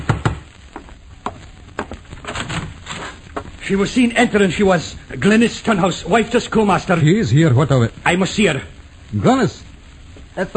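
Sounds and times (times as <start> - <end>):
heavy knocking on a door: 0.0 - 0.5
faint hiss: 0.0 - 10.5
speech: 3.7 - 9.6, 10.4 - 10.5.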